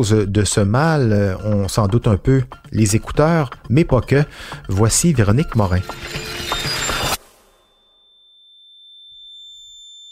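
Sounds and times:
speech: 0.0s - 6.4s
simulated tinnitus high-pitched ringing tone: 5.6s - 10.1s.

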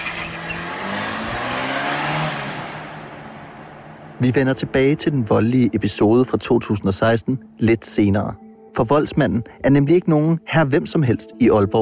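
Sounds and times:
car engine roaring as the car accelerates hard: 0.0s - 5.8s
car tire noise: 0.0s - 6.0s
speech: 4.2s - 11.7s.

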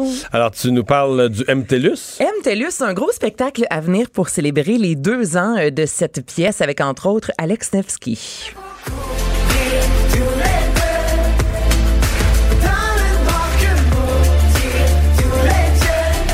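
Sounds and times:
speech: 0.0s - 9.1s
pop song with steady beat, deep bass and layered instruments: 8.4s - 16.3s.

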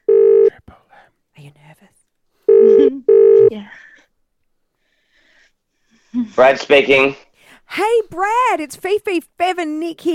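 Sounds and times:
telephone dialing tones as a phone number is entered: 2.5s - 3.5s
speech: 6.4s - 10.1s.

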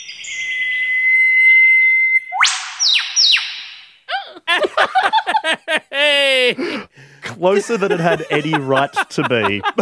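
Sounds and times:
eastern whipbird call: 0.4s - 3.9s
laughter: 4.1s - 9.8s
speech: 6.5s - 9.8s.

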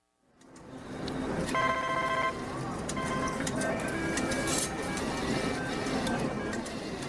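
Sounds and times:
slot machines spinning on a busy casino floor: 1.2s - 7.0s
bright electronic chiming tones: 1.6s - 6.4s.

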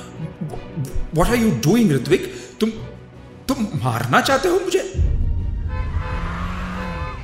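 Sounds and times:
speech: 1.1s - 2.9s, 3.5s - 5.0s
car engine roaring at speed accelerating hard: 5.7s - 7.2s.

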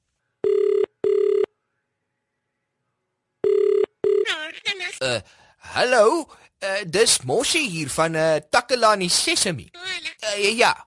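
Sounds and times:
telephone ringback tone on outgoing call to the municipality: 0.4s - 1.5s, 3.4s - 4.3s
speech: 4.8s - 10.8s.

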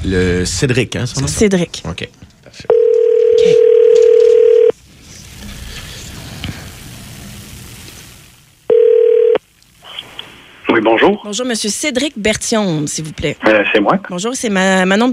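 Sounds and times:
speech: 0.0s - 2.8s, 3.4s - 3.9s, 11.0s - 15.1s
telephone dial tone while placing a call: 2.7s - 4.7s, 8.7s - 9.4s.

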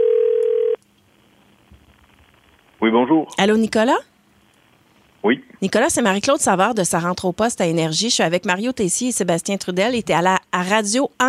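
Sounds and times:
telephone ringback tone on an outgoing call: 0.0s - 0.8s
speech: 2.8s - 4.1s, 5.2s - 11.2s.

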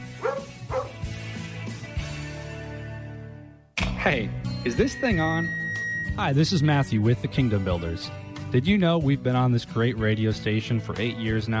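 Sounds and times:
dog barking and yipping: 0.1s - 1.0s
speech: 4.0s - 5.6s, 6.2s - 11.5s.

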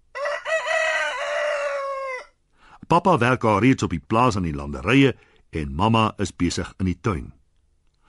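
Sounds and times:
rooster crowing: 0.1s - 2.4s
speech: 2.9s - 7.4s.

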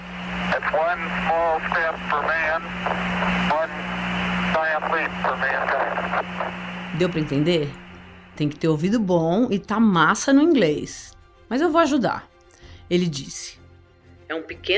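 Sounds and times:
broadband hiss on old radio transmission: 0.0s - 8.6s
low hum on old radio transmission: 0.0s - 11.2s
band-limited male voice over old radio transmission: 0.5s - 7.7s
speech: 6.2s - 7.8s, 8.4s - 12.3s, 12.9s - 13.6s, 14.3s - 14.7s.

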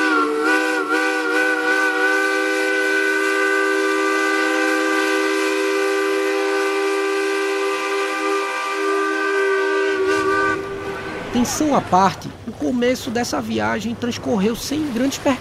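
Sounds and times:
steamship whistle leaving port: 0.0s - 11.3s
speech: 11.4s - 15.3s.

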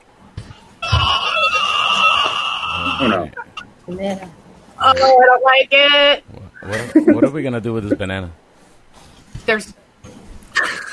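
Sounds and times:
shrill scream from a video game: 0.8s - 3.3s
laughter: 2.7s - 3.6s, 6.3s - 8.2s
speech: 3.0s - 8.4s, 9.5s - 9.8s.

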